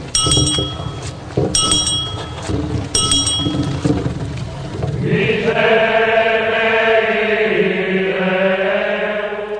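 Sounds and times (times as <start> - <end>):
small handbell ringing in a procession: 0.1 - 3.9
chorus of voices chanting: 4.9 - 9.5.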